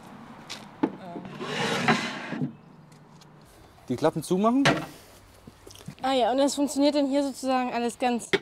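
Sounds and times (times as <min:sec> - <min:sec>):
wooden crossboard drawer sliding into place: 0:01.3 - 0:02.5
speech: 0:03.9 - 0:05.0, 0:06.1 - 0:08.4.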